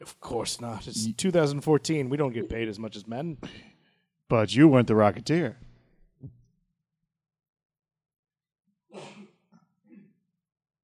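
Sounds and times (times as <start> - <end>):
speech: 0.0 - 3.7, 4.3 - 5.6
person sneezing: 8.9 - 10.1.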